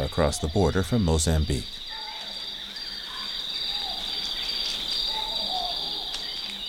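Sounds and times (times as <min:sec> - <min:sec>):
amphibians: 0:00.0 - 0:06.6
baboons: 0:00.0 - 0:06.6
insects droning at dawn in a forest in Zimbabwe: 0:00.0 - 0:06.6
speech: 0:00.1 - 0:01.8
faint bird whistles and chirps: 0:01.9 - 0:06.6.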